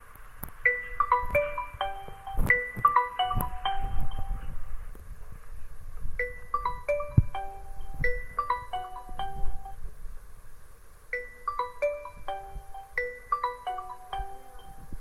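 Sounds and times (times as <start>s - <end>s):
mobile phone ringtone: 0.7s - 4.6s, 6.2s - 9.8s, 11.2s - 14.9s.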